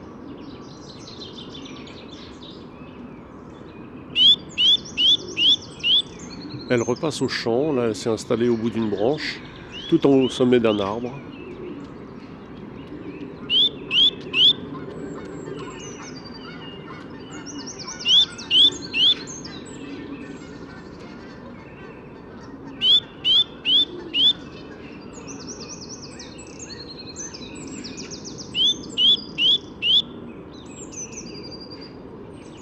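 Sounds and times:
birdsong: 0.0s - 32.6s
blue tit singing: 3.6s - 14.6s, 15.5s - 20.3s, 22.7s - 32.6s
speech: 6.7s - 11.4s.

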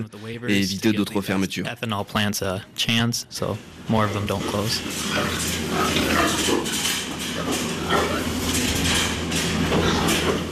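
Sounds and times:
speech: 0.0s - 6.8s, 7.4s - 8.4s
steady low hum of barn noise on a pig farm: 1.5s - 10.5s
many pigs grunting and squealing on a pig farm: 4.7s - 10.5s.

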